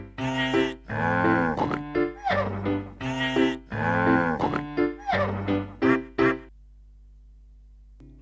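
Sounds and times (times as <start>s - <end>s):
cow mooing: 0.2s - 5.4s
pig oinking: 0.2s - 5.4s
farm animal calls: 0.2s - 6.4s.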